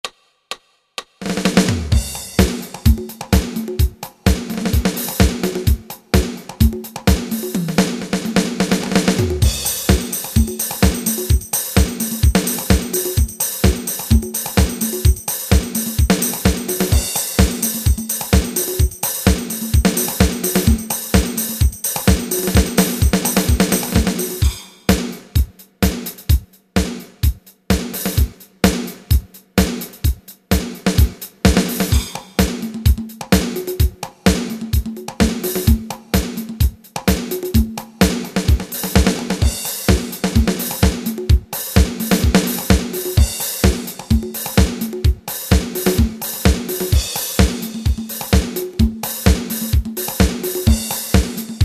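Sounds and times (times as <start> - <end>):
dance 8 beat: 0.5 - 51.6.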